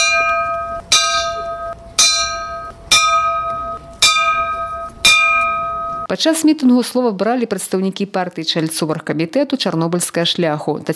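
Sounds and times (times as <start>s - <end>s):
bell tolling at the start of a gathering: 0.0s - 6.1s
speech: 6.1s - 10.9s.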